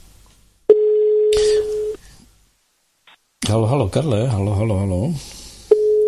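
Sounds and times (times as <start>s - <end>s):
telephone tone on an outgoing call: 0.7s - 2.0s, 5.7s - 6.0s
speech: 3.5s - 5.4s.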